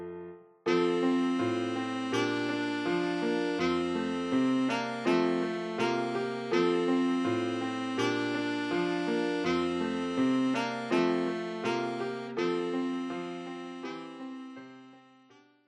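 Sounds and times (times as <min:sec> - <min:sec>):
alto saxophone playing: 0:00.7 - 0:15.4.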